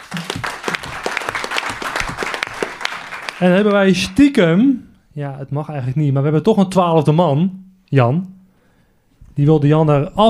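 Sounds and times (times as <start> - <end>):
audience applauding: 0.0 - 4.2
speech: 3.4 - 8.4, 9.4 - 10.2.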